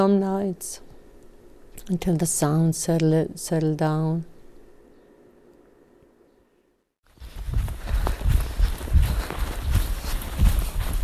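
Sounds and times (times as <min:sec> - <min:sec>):
speech: 0:00.0 - 0:00.9, 0:01.9 - 0:04.3
running footsteps of someone out for a jog: 0:07.1 - 0:11.0
constant rushing noise: 0:07.2 - 0:11.0.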